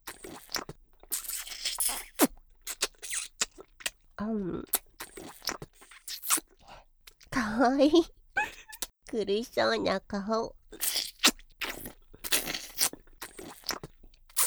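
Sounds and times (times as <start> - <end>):
person crunching and chewing food: 0.0 - 7.3, 10.6 - 14.4
speech: 4.2 - 4.7, 7.6 - 8.2, 9.1 - 10.6.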